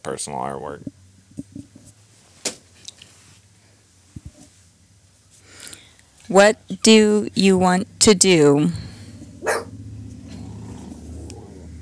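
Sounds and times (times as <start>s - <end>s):
speech: 0.0s - 1.0s, 6.3s - 8.8s
low steady hum: 0.0s - 11.8s
dog barking: 9.4s - 9.8s.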